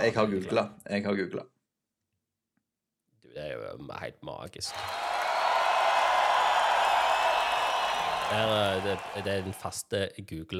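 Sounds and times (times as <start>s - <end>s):
speech: 0.0s - 1.6s, 3.4s - 5.1s, 8.3s - 10.5s
crowd applause and cheering sound effect from soundboard button: 4.7s - 9.7s.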